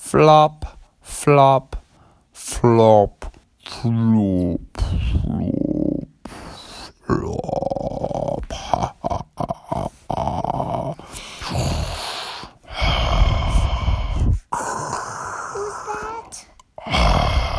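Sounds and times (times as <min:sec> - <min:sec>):
speech: 0:00.1 - 0:01.8, 0:02.4 - 0:05.6
voice imitating a frog snoring as it goes to sleep: 0:04.8 - 0:17.5.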